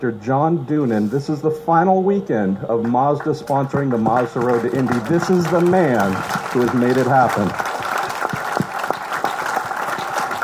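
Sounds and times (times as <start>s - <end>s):
speech: 0.0s - 7.7s
crowd applauding: 2.8s - 10.4s
sharper claps: 2.8s - 10.4s.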